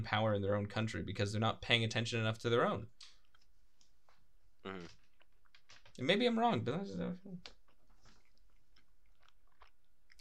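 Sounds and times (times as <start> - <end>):
speech: 0.0 - 3.1, 4.6 - 5.0, 6.0 - 7.6
person chewing a burrito: 3.0 - 5.7, 7.5 - 10.1.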